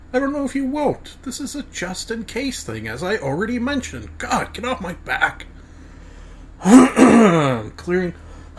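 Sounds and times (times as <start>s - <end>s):
speech: 0.1s - 5.5s, 6.6s - 8.5s
person clearing throat with a drawn-out voiced rasp: 6.6s - 7.7s.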